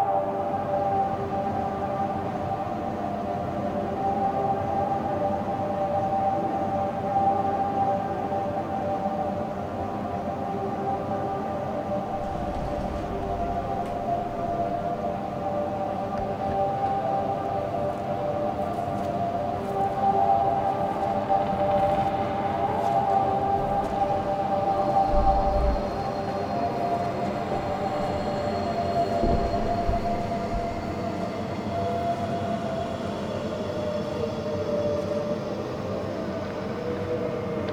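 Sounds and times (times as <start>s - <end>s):
catacombs ambience: 0.0s - 37.7s.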